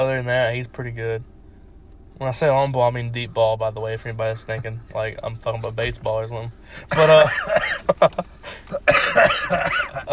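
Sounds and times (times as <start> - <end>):
speech: 0.0 - 1.4, 2.2 - 10.1
coughing: 6.9 - 10.1
throat clearing: 8.7 - 10.1.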